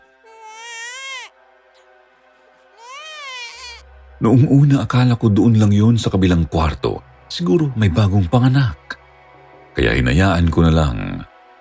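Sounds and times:
infant crying: 0.2s - 1.3s, 2.7s - 3.8s
speech: 4.2s - 8.9s, 9.8s - 11.1s.

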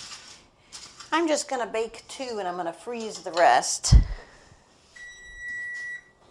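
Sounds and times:
speech: 1.1s - 4.2s
kitchen timer high-pitched electronic beep: 5.0s - 6.1s.

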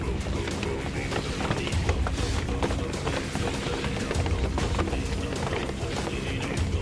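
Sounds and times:
many overlapping footsteps walking and shuffling outside: 0.0s - 6.8s.

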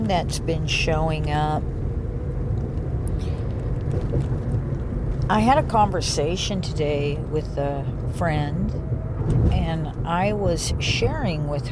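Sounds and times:
road and engine noise inside a moving car: 0.0s - 11.7s
speech: 0.1s - 1.8s, 3.9s - 4.6s, 5.3s - 11.7s
faint scattered clicks and rustles: 2.5s - 5.3s.

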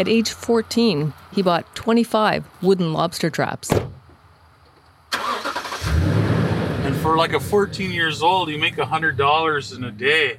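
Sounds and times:
speech: 0.0s - 4.0s, 7.0s - 10.3s
car engine starting and settling into a low rumble: 5.1s - 10.3s.

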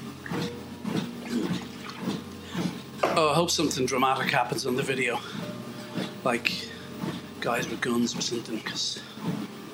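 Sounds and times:
person gulping and swallowing water: 0.3s - 2.9s
speech: 3.4s - 5.4s, 6.2s - 6.7s, 7.4s - 9.5s.

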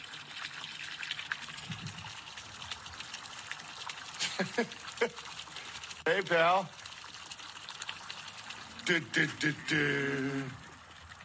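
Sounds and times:
water pouring into a container on a farm: 0.0s - 11.2s
speech: 4.4s - 5.4s, 6.1s - 6.8s, 8.9s - 10.6s
voice sounds: 8.8s - 10.7s.

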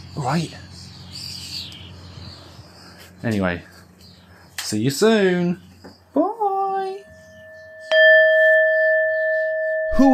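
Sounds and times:
birds chirping outdoors: 0.0s - 10.1s
speech: 0.2s - 0.7s, 3.2s - 3.7s, 4.7s - 5.7s.

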